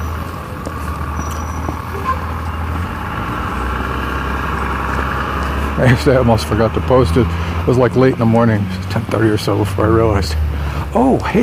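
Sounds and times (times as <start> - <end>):
school bus engine idling: 0.0 - 11.4
speech: 5.8 - 11.4.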